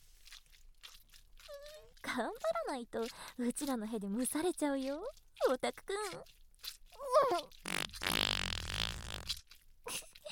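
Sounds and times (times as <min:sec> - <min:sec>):
speech: 0:02.2 - 0:06.4, 0:07.2 - 0:08.5
long loud wet-sounding fart: 0:07.1 - 0:10.1.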